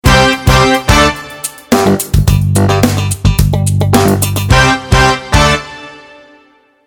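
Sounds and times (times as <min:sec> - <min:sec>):
funky logo jingle: 0:00.1 - 0:05.6.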